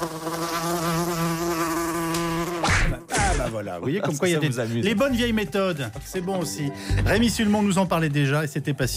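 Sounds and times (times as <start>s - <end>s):
mosquito whine: 0.0s - 3.1s
speech: 3.6s - 8.9s.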